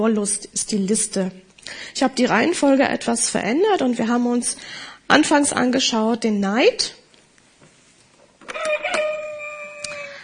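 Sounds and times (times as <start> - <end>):
speech: 0.0 - 7.0
rooster crowing: 8.5 - 10.2.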